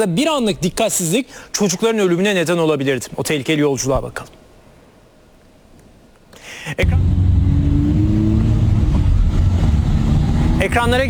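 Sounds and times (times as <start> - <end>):
speech: 0.0 - 4.4, 6.6 - 7.1, 10.6 - 11.0
trucks driving in road traffic: 6.8 - 11.0.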